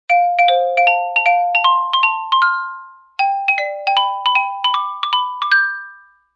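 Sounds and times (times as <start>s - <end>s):
happy marimba melody ringtone: 0.1s - 6.3s.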